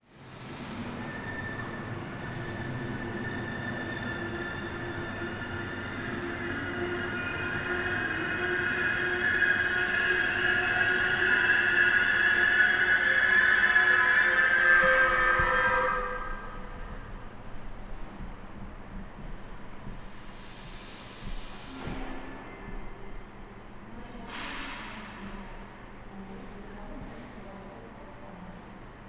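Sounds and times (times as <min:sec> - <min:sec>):
train at a main railway station: 0:00.0 - 0:29.0.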